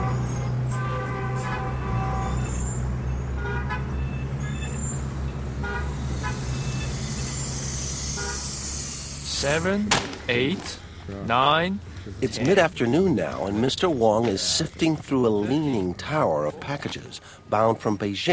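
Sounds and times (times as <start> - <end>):
car horn toots: 0.0 - 2.7, 3.4 - 4.0, 5.6 - 6.8
dense street traffic in Beijing: 0.0 - 18.3
speech: 9.4 - 18.3.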